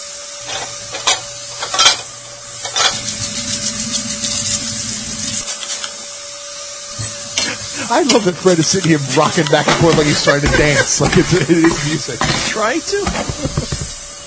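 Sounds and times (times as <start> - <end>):
low mechanical hum: 0.0 - 14.2
dishes being scrubbed to get grease off: 0.4 - 4.7, 6.9 - 14.2
speech: 7.9 - 13.7
laughter: 9.0 - 13.9.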